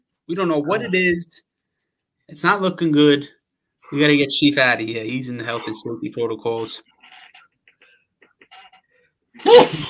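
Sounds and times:
speech: 0.3 - 1.5, 2.3 - 6.9, 9.4 - 9.8
person sneezing: 9.4 - 9.8.

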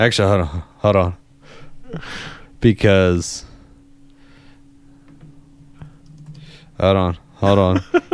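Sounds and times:
speech: 0.0 - 1.2, 1.9 - 3.5, 6.8 - 8.1
steady low electrical hum: 0.0 - 8.1
typing on a computer keyboard: 5.9 - 6.4.

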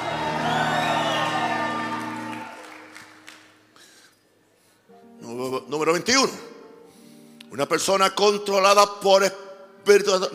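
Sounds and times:
large crowd shouting and cheering: 0.0 - 3.3
speech: 5.7 - 6.4, 7.6 - 10.3.

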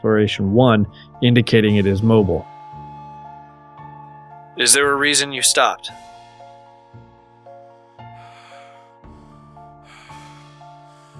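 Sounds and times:
speech: 0.0 - 2.5, 4.6 - 6.1
heavy labored breathing: 0.9 - 4.3, 5.9 - 11.1
low steady droning hum: 1.7 - 8.6.

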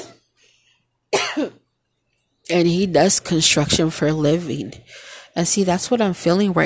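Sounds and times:
person coughing: 0.0 - 0.2, 1.1 - 1.6
speech: 1.4 - 1.6, 2.5 - 6.6.

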